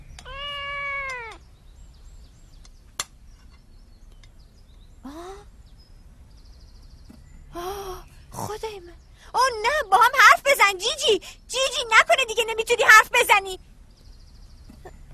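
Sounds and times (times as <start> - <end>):
quiet hum: 0.0 - 15.1
cat meowing: 0.2 - 1.4
speech: 10.7 - 13.6.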